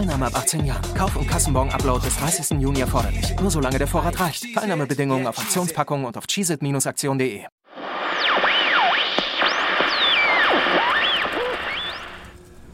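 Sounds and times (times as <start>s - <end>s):
speech: 0.0s - 7.6s
wavering whistle-like tones: 7.8s - 12.4s.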